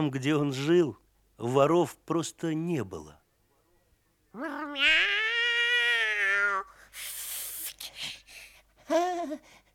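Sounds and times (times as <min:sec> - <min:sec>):
speech: 0:00.0 - 0:03.2, 0:04.4 - 0:05.2, 0:08.9 - 0:09.6
cat meowing: 0:04.4 - 0:06.6
cat hissing rasp: 0:05.4 - 0:08.5.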